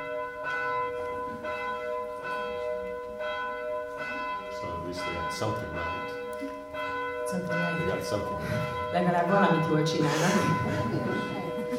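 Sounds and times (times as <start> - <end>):
bell ringing: 0.0 - 11.7
speech: 4.9 - 6.6, 7.3 - 11.4
laughter: 10.0 - 11.7.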